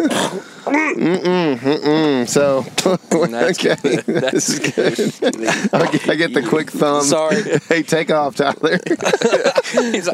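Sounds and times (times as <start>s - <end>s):
person clearing throat: 0.0s - 2.1s
person hacking up phlegm: 0.0s - 2.3s
speech: 0.0s - 10.1s
laughter: 1.0s - 10.1s.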